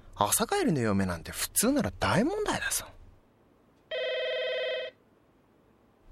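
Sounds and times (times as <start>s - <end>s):
speech: 0.2s - 3.0s
telephone ringing with electronic trill: 3.9s - 5.0s.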